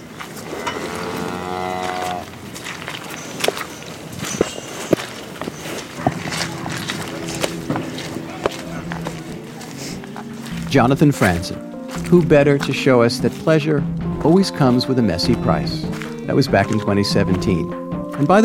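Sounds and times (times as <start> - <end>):
hooves and footsteps on manure-covered ground: 0.0 - 18.4
cow letting out a long drawn-out moo: 0.4 - 2.4, 6.2 - 9.2
herd of hundreds of cows lowing: 0.4 - 2.4, 5.8 - 10.6
speech: 10.8 - 18.4.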